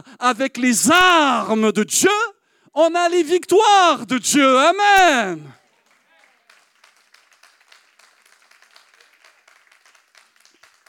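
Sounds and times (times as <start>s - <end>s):
speech: 0.1s - 5.6s
modest audience clapping thinly: 5.0s - 10.8s.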